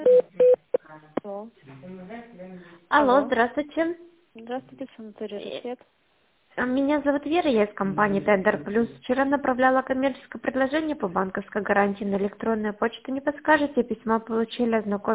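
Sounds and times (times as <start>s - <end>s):
short telephone beeps: 0.1s - 0.7s
speech: 3.0s - 15.1s.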